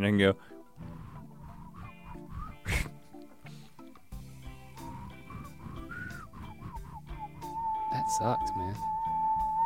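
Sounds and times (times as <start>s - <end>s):
speech: 0.0s - 0.5s, 8.1s - 8.9s
person whistling with the mouth in high notes: 0.8s - 3.0s, 4.8s - 9.6s.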